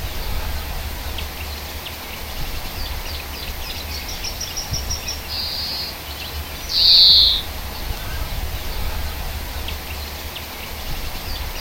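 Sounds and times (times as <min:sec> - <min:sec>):
low background rumble: 0:00.0 - 0:11.5
European greenfinch twittering in a hedge: 0:02.8 - 0:08.2.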